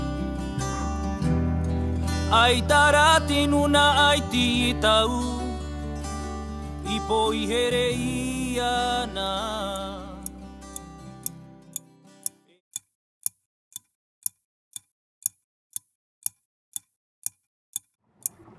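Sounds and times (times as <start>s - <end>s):
brief passage of music: 0.0s - 12.4s
wall clock ticking: 12.2s - 18.5s.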